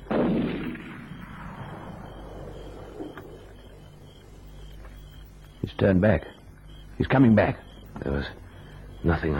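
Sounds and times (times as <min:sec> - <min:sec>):
gunshot fired at a tree: 0:00.0 - 0:02.2
speech: 0:05.6 - 0:06.4, 0:07.0 - 0:08.4, 0:09.0 - 0:09.3.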